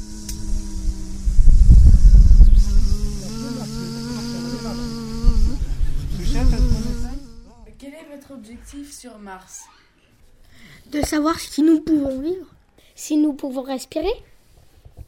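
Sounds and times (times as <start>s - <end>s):
low rumbling noise: 0.0s - 7.7s
mosquitoes buzzing: 0.0s - 7.8s
speech: 8.3s - 9.8s, 10.8s - 14.3s.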